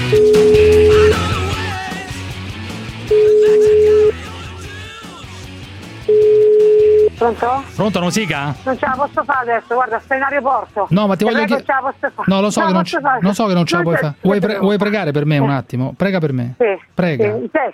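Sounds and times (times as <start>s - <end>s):
telephone ringback tone while calling someone: 0.1s - 1.3s, 3.1s - 4.2s, 6.1s - 7.2s
speech: 7.3s - 17.7s.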